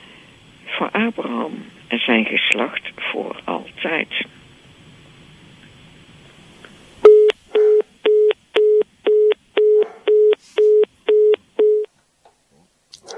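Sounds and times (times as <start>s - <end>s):
speech: 0.8s - 4.4s
telephone busy tone after the phone line drops: 7.0s - 11.9s.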